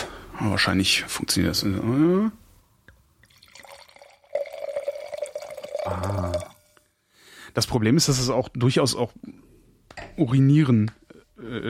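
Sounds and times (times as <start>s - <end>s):
speech: 0.4s - 2.4s, 5.9s - 6.5s, 7.6s - 9.5s, 10.2s - 11.6s
liquid poured into a glass: 3.2s - 6.8s.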